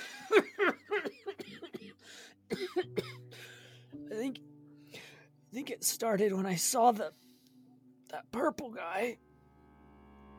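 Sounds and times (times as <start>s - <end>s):
man coughing: 0.2s - 3.6s
speech: 5.7s - 7.2s, 8.4s - 9.3s.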